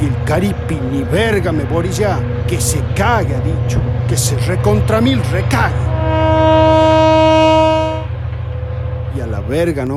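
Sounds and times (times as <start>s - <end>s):
speech: 0.0s - 6.0s, 9.4s - 9.9s
approaching train rumbling the ground: 0.0s - 9.9s
approaching train horn blast: 5.3s - 8.8s.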